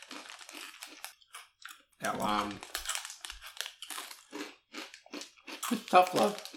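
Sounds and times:
crisp rice snacks being chewed: 0.0s - 6.5s
speech: 2.0s - 2.7s, 5.9s - 6.5s.

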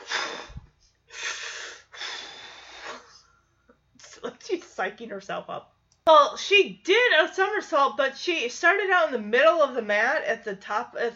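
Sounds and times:
person mimicking a forceful breathing exercise: 0.0s - 3.4s
speech: 4.8s - 11.1s.

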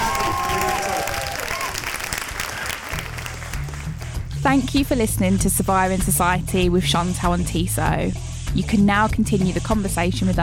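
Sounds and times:
audience applause with dense steady clapping: 0.0s - 4.2s
speech: 4.4s - 10.4s.

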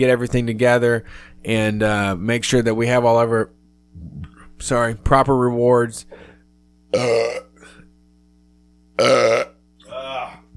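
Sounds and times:
speech: 0.0s - 6.3s, 6.9s - 7.5s, 9.0s - 9.5s
faint steady hum: 0.0s - 10.5s
loud raspy voiced burps: 6.9s - 7.8s, 9.0s - 10.4s.

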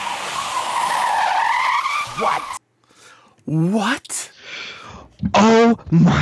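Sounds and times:
tires screeching as electric car drifts sideways: 0.0s - 2.6s
speech: 3.5s - 4.3s, 5.4s - 6.1s.

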